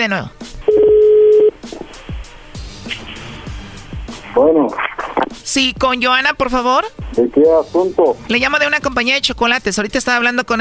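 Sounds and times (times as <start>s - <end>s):
speech: 0.0s - 0.9s, 4.4s - 4.9s, 5.5s - 10.5s
telephone keypad tone while redialing a number: 0.7s - 1.5s.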